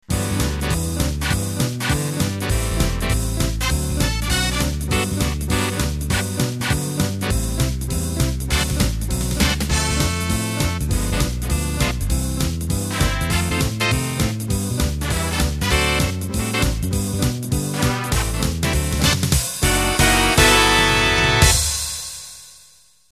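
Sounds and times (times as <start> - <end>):
fast jive music: 0.0 - 22.0.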